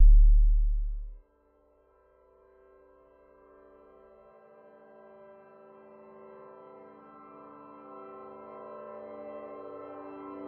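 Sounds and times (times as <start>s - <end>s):
video game synth start sound: 0.0s - 1.1s.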